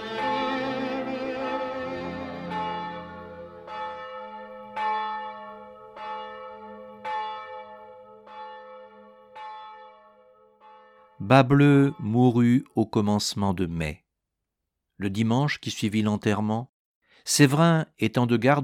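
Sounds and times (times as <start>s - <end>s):
church bells ringing: 0.0s - 12.1s
speech: 11.2s - 14.0s, 15.0s - 18.6s.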